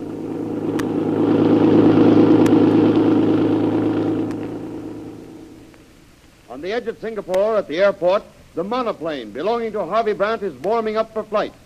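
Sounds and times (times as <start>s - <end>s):
taxi engine roaring speeding around corners on the way to the airport: 0.0s - 6.0s
speech: 6.8s - 11.6s.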